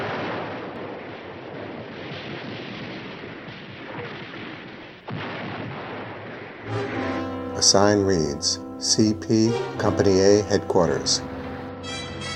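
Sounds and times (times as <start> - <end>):
soldiers firing from foxholes: 0.0 - 7.0
sharp crack: 0.0 - 11.7
battlefield artillery bombardment: 0.0 - 11.8
speech: 7.6 - 11.3.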